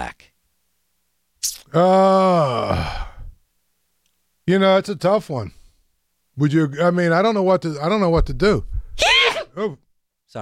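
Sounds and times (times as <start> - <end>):
speech: 1.7 - 3.0, 4.5 - 5.6, 6.4 - 10.4
person sneezing: 9.0 - 9.6.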